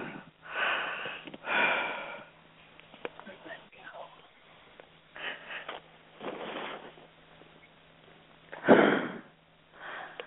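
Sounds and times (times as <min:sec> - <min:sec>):
deep breaths in and out during a guided relaxation: 0:00.0 - 0:02.7, 0:05.1 - 0:05.8, 0:08.5 - 0:10.2
low steady hum: 0:00.0 - 0:10.2.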